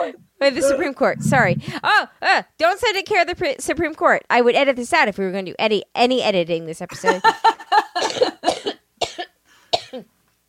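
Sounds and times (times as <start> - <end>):
speech: 0.0 - 8.8
harsh raspy coughing fit: 8.0 - 10.1.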